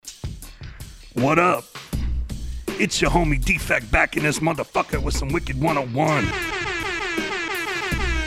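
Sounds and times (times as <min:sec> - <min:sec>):
speech: 0:01.2 - 0:01.8, 0:02.8 - 0:06.6
loud sustained air horn blast: 0:06.2 - 0:08.2.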